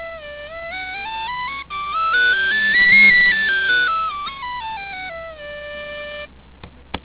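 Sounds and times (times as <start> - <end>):
whistle playing a high D scale: 0.0 - 6.3.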